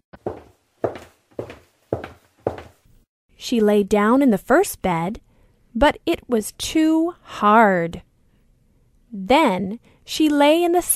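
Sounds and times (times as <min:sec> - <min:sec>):
footsteps climbing stairs up to a bedroom: 0:00.2 - 0:02.8
speech: 0:03.4 - 0:05.2, 0:05.8 - 0:08.1, 0:09.1 - 0:10.9.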